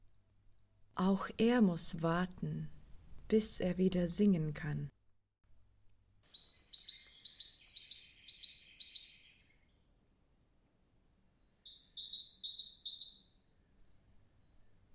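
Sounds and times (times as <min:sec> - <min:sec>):
speech: 0:01.0 - 0:04.9
bird chirping: 0:06.2 - 0:09.9, 0:11.1 - 0:14.9.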